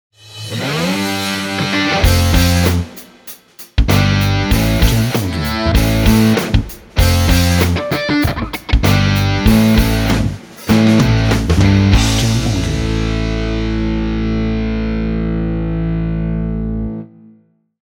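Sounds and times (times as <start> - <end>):
hard rock intro logo jingle: 0.2 - 16.6.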